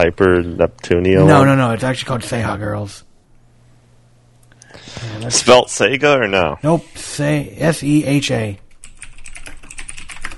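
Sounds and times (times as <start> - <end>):
speech: 0.0 - 3.1, 4.8 - 8.6
two people typing on computer keyboards: 8.7 - 10.3.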